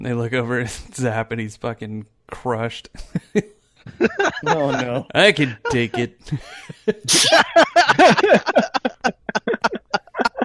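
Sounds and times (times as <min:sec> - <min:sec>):
speech: 0:00.0 - 0:09.2
laughter: 0:03.0 - 0:10.4
loud sneeze: 0:07.1 - 0:07.5.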